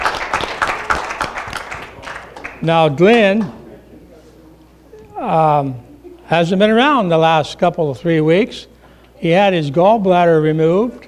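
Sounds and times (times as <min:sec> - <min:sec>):
audience clapping at a morning gathering: 0:00.0 - 0:03.6
speech: 0:02.6 - 0:03.6, 0:05.2 - 0:11.0.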